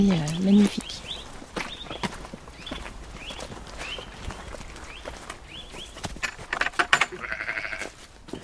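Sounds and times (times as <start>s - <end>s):
speech: 0.0s - 1.1s
ewe bleating: 7.1s - 8.0s.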